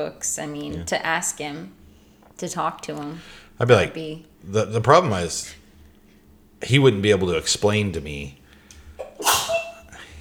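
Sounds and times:
speech: 0.0 - 1.8, 2.4 - 5.6, 6.6 - 8.4
person sneezing: 9.0 - 10.1.

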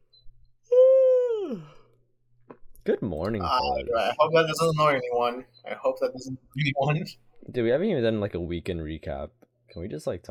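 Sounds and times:
person yawning trailing into a breathy exhale: 0.7 - 1.9
speech: 2.9 - 10.2.

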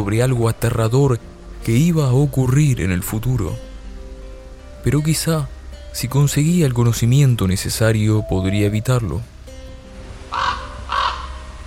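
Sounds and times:
speech: 0.0 - 3.7, 4.8 - 9.3
ravens cawing harshly: 10.3 - 11.6.

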